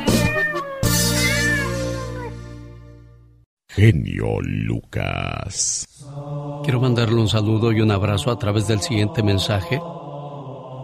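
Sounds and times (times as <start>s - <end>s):
cat meowing: 0.0s - 2.4s
speech: 3.8s - 10.0s.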